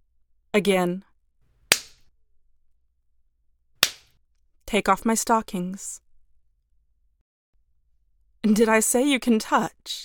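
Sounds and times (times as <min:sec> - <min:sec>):
speech: 0:00.6 - 0:01.1, 0:04.7 - 0:06.0, 0:08.4 - 0:10.0
hand slapping skin: 0:01.7 - 0:02.1, 0:03.8 - 0:04.1.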